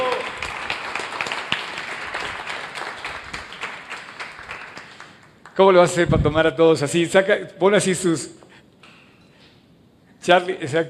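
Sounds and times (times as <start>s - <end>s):
group applauding for the photographer: 0.0s - 5.8s
speech: 5.6s - 8.4s, 10.3s - 10.8s.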